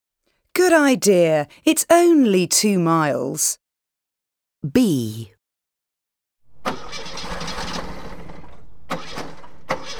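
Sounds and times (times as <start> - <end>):
speech: 0.6 - 3.6, 4.6 - 5.4
car engine cranking but failing to start: 6.5 - 9.9.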